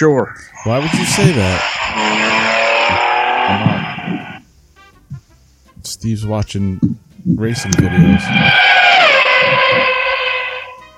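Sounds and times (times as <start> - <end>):
speech: 0.0 - 2.2, 2.9 - 4.3, 5.8 - 8.7
four-channel RC ground transmitter radio switching on or off with buzzy electronic tone: 0.0 - 4.5, 7.4 - 10.9.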